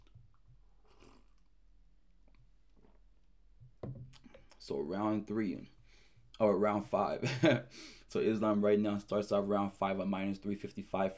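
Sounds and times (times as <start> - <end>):
sips of coffee: 0.8 - 1.5
brief low thump: 3.8 - 4.1
speech: 4.7 - 5.8, 6.4 - 11.1.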